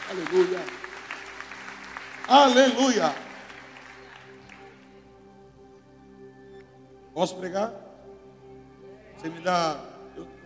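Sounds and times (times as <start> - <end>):
audience applauding: 0.0 - 5.2
sustained keyboard chords: 0.0 - 10.4
speech: 0.1 - 0.9, 2.3 - 3.2, 7.2 - 7.8, 9.2 - 10.3.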